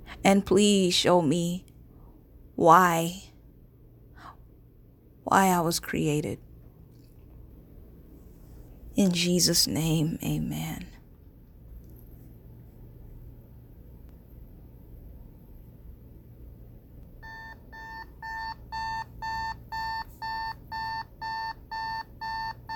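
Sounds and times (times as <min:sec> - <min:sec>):
low steady hum: 0:00.0 - 0:22.7
speech: 0:00.2 - 0:01.7, 0:02.6 - 0:03.3, 0:05.3 - 0:06.4, 0:09.0 - 0:10.9
alarm clock ringing with rapid high electronic beeps: 0:17.2 - 0:22.7.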